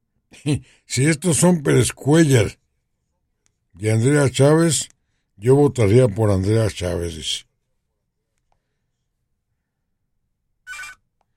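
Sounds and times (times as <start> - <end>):
speech: 0.4 - 2.6, 3.8 - 7.5
telephone ringing for an incoming call: 10.7 - 11.1.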